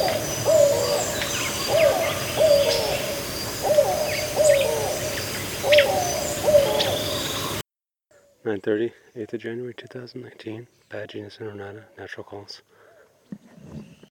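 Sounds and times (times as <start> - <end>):
bird calling low notes: 0.0 - 7.6
busy chorus of thin chirps and whistles from other birds: 0.0 - 12.2.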